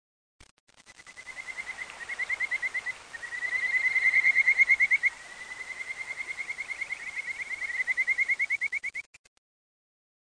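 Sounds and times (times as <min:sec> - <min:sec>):
frog calling with fast pulsed trills: 0:01.0 - 0:09.1.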